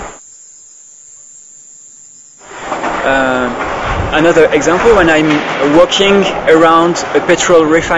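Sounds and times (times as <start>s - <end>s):
crickets chirping at night in a field: 0.0s - 4.0s
speech: 3.1s - 7.9s.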